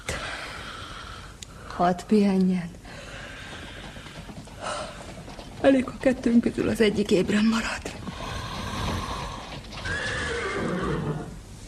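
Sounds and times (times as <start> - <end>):
speech: 1.8 - 2.8, 5.6 - 7.9
horse hooves clattering on hard ground: 3.0 - 10.7
horses whinnying: 8.5 - 11.4.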